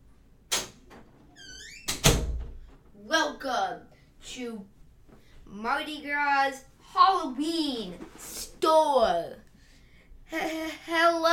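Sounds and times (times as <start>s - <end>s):
door rattling: 0.5s - 2.7s
speech: 3.0s - 4.8s, 5.5s - 9.4s, 10.3s - 11.3s.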